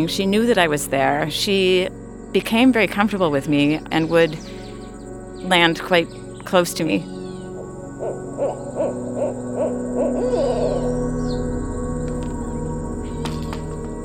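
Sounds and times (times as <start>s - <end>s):
speech: 0.0s - 4.6s, 5.4s - 7.2s
owl hooting in a yard in the evening: 3.6s - 14.0s.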